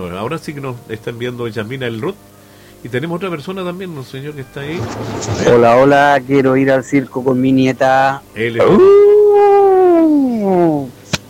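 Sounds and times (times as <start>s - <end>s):
speech: 0.0s - 9.0s
person imitating a dinosaur roar: 8.6s - 10.9s.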